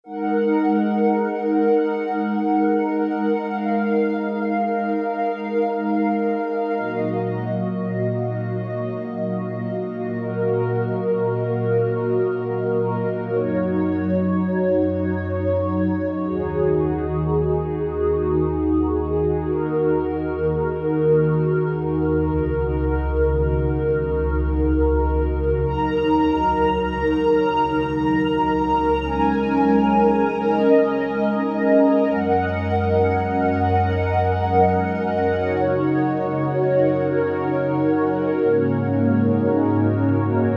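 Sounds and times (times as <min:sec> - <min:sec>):
synth pad on a Kurzweil K2000: 0:00.1 - 0:40.5.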